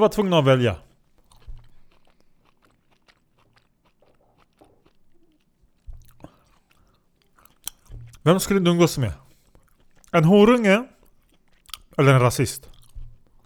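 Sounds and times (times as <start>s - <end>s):
speech: 0.0s - 0.8s, 8.2s - 9.2s, 10.1s - 10.9s, 12.0s - 12.7s
chewing olives: 0.8s - 8.5s, 9.2s - 10.2s, 10.9s - 12.0s, 12.6s - 13.4s.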